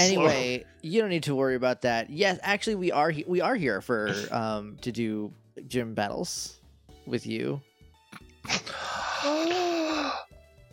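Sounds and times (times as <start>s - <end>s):
speech: 0.0s - 10.3s
sharp gasp of realization: 8.5s - 10.2s.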